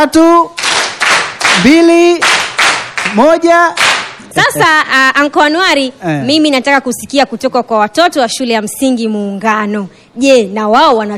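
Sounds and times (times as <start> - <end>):
speech: 0.0 - 0.6, 1.6 - 2.4, 3.1 - 11.1
people clapping for schoolchildren: 0.5 - 4.6.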